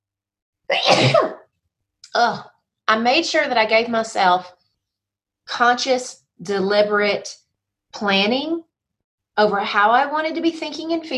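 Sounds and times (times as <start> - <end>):
speech: 0.7 - 1.4, 2.1 - 4.6, 5.5 - 8.7, 9.4 - 11.1
loud sneeze: 0.7 - 1.5.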